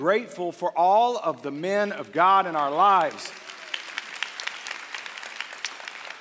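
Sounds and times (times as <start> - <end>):
speech: 0.0 - 3.5
light polite applause from a church audience: 3.0 - 6.1.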